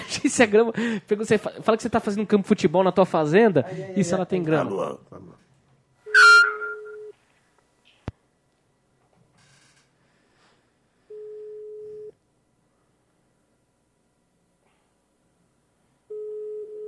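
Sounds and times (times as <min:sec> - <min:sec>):
speech: 0:00.2 - 0:05.4
telephone line ringback tone on an unanswered call: 0:06.1 - 0:07.1, 0:16.1 - 0:16.8.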